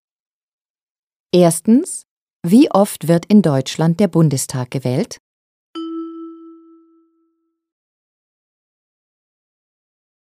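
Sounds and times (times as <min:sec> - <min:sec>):
speech: 0:01.3 - 0:05.2
bell-like signal tone in a German listening exercise: 0:05.8 - 0:07.6.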